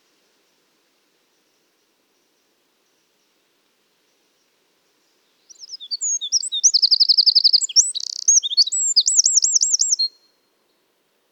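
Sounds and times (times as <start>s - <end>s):
Eurasian wren Troglodytes troglodytes singing chips, trills and rattle: 5.5s - 10.2s.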